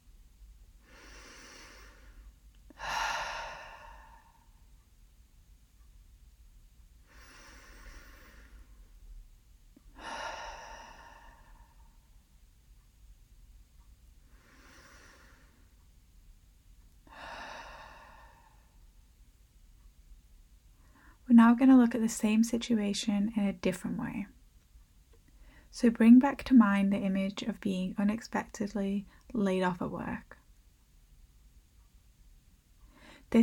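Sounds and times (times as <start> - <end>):
deep slow clearing breaths: 0.8 - 4.8, 7.0 - 9.2, 9.8 - 12.3, 14.2 - 15.9, 17.0 - 19.0, 32.8 - 33.3
speech: 21.4 - 24.4, 25.8 - 30.4.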